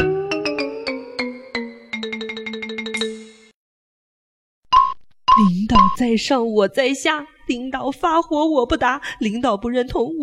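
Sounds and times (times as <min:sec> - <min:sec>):
phone ringtone with bright chiming melody: 0:00.0 - 0:03.5
speech: 0:05.4 - 0:10.2.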